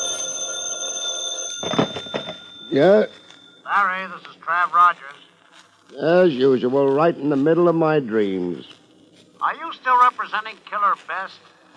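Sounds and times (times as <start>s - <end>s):
telephone ringing: 0.0s - 4.2s
rustling and shuffling: 1.6s - 11.7s
speech: 2.7s - 5.2s, 5.9s - 8.8s, 9.4s - 11.6s.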